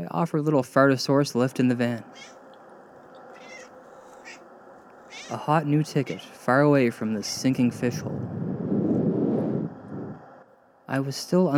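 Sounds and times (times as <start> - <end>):
speech: 0.0 - 2.4, 5.3 - 8.6, 10.9 - 11.5
steady hiss: 0.0 - 8.9, 9.5 - 11.5
domestic cat meowing: 2.1 - 2.4, 3.3 - 4.4, 5.1 - 5.4.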